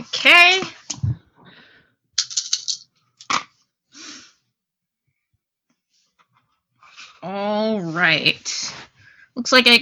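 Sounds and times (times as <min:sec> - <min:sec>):
speech: 0:00.2 - 0:00.7, 0:08.1 - 0:08.8, 0:09.4 - 0:09.7
purple dice rolling and clattering: 0:02.2 - 0:03.5.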